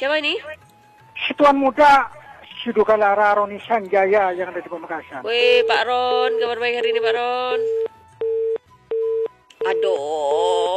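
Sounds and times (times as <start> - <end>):
speech: 0.0 - 0.7, 1.3 - 7.9, 9.6 - 10.7
telephone line tone beeps during a phone call: 7.6 - 10.0.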